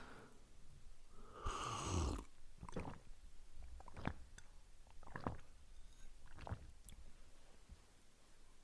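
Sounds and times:
loud swallowing of water while drinking: 0:01.2 - 0:07.2
short wet throat clicks: 0:01.5 - 0:03.1, 0:03.7 - 0:05.5, 0:06.3 - 0:06.7.

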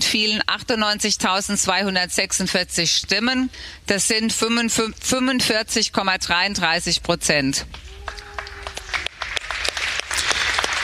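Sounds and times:
speech: 0:00.1 - 0:08.2
crowd applause after election result announcement in a large room: 0:07.7 - 0:10.8.

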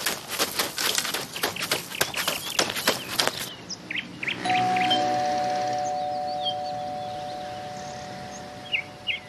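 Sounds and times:
faint birds chirping: 0:00.0 - 0:09.2
doorbell of a first-floor home ringing with a sustained tone: 0:04.4 - 0:09.2.

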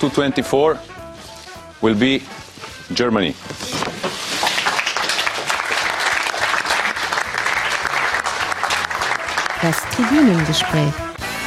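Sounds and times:
speech: 0:00.0 - 0:01.0, 0:01.8 - 0:03.7, 0:09.6 - 0:11.1
audience applause at announcement: 0:04.2 - 0:11.0.

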